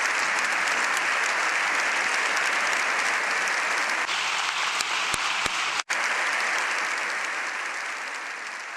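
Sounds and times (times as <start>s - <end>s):
large crowd applauding in a parliament hall: 0.0s - 8.7s.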